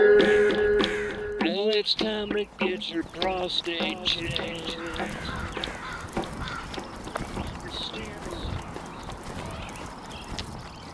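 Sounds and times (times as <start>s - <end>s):
crow cawing at a raccoon by the road: 0.2s - 1.4s, 4.6s - 7.0s
steady outdoor rustling noise: 0.2s - 10.9s
speech: 1.9s - 5.7s.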